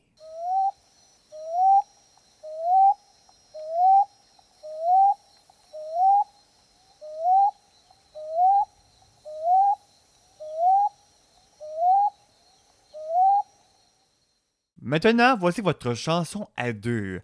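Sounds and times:
bird calling with a short rising hoot-like note: 0.2s - 13.8s
speech: 14.9s - 17.2s.

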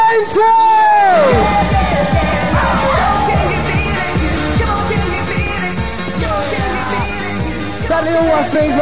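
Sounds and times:
rave crowd cheering, yelling and whooping: 0.4s - 7.4s
pounding dance beat at a 1993 rave: 1.1s - 8.0s.

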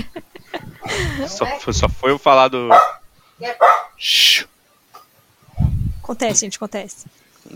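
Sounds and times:
low rumbling: 0.6s - 2.2s, 5.5s - 6.3s
speech: 1.0s - 4.5s, 6.1s - 7.5s
dog barking and yelping: 2.7s - 4.0s.

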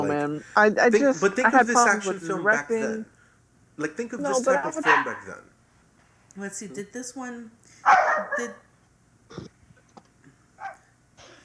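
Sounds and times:
speech: 0.0s - 3.2s, 3.8s - 5.5s, 6.4s - 8.6s, 9.3s - 9.6s
dog barking: 4.7s - 5.3s, 7.8s - 8.7s, 10.6s - 10.9s.

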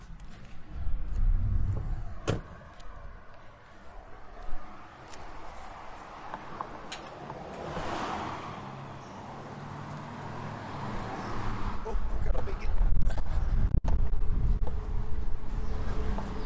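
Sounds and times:
low car engine rumble: 0.0s - 16.4s
quiet outdoor street noise: 0.0s - 16.4s
car door shutting with a sharp thud: 2.2s - 2.5s.

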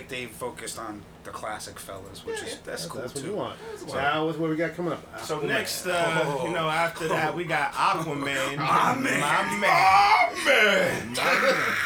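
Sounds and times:
speech: 0.1s - 11.8s
man screaming in a movie trailer: 8.6s - 11.8s.

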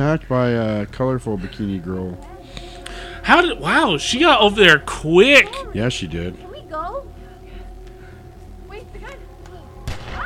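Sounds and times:
speech: 0.0s - 7.1s
dense steady film soundtrack with voices: 0.0s - 10.2s
gunshot from a movie: 9.8s - 10.2s.

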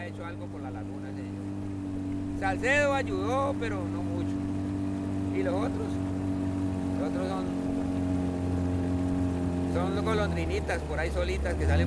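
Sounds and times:
motorboat engine droning on a lagoon: 0.0s - 11.8s
speech: 0.2s - 1.7s, 2.4s - 4.5s, 5.3s - 6.1s, 7.0s - 7.6s, 9.8s - 11.8s.

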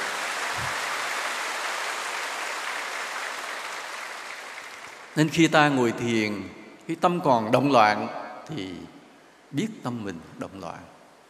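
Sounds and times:
audience applauding: 0.0s - 5.2s
speech: 5.2s - 10.9s.

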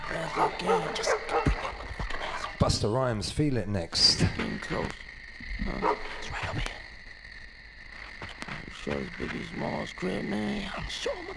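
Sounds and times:
faint noise: 0.0s - 11.3s
dog barking: 0.3s - 1.8s, 5.7s - 6.2s
speech: 0.4s - 1.4s, 2.6s - 6.8s, 8.8s - 11.3s.

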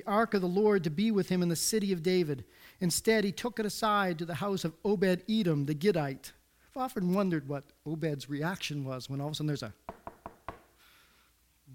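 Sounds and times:
speech: 0.0s - 10.0s
quiet room hiss: 0.0s - 11.7s
sharp knocks on a wooden door: 9.9s - 10.7s.

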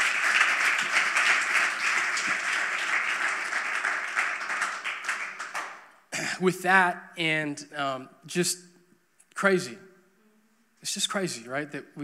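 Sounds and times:
large church crowd applauding in a big room: 0.0s - 5.9s
speech: 6.4s - 8.7s, 9.4s - 9.9s, 10.8s - 12.0s.

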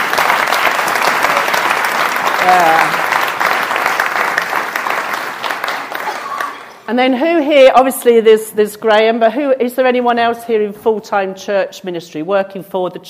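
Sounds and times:
sizeable audience applauding: 0.0s - 6.9s
speech: 2.4s - 3.0s, 6.9s - 13.0s.

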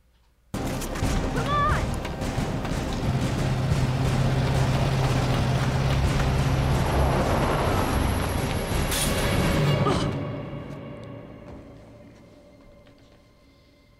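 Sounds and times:
truck engine roaring: 0.6s - 10.5s.

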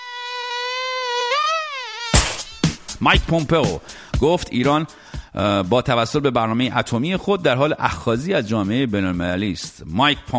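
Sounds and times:
fly buzzing: 0.0s - 3.0s
loud noisy smack: 2.2s - 2.9s
speech: 3.0s - 10.3s.

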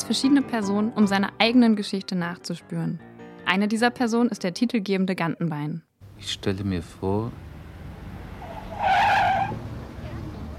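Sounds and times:
speech: 0.0s - 7.5s
car tires skidding in a traffic accident: 7.3s - 10.5s.

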